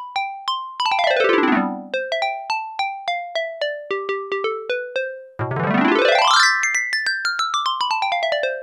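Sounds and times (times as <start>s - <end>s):
synthesizer xylophone preset: 0.2s - 8.6s.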